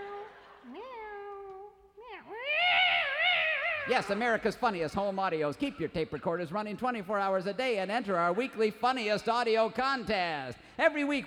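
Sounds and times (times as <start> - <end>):
cat yowling: 2.4 - 4.0
speech: 3.9 - 11.2.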